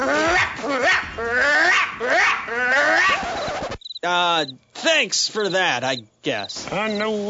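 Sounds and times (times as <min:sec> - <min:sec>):
dog barking aggressively: 0:00.1 - 0:03.1
speech: 0:04.0 - 0:07.2.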